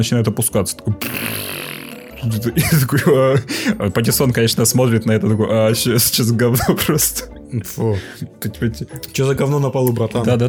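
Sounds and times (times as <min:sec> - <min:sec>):
speech: 0:00.0 - 0:10.4
person blowing raspberries into a microphone imitating a fart: 0:01.0 - 0:02.4.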